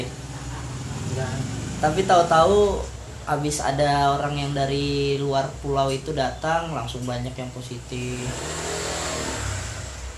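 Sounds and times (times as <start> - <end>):
vehicle engine revving and accelerating: 0.0 - 2.7, 7.9 - 10.1
speech: 1.2 - 8.8.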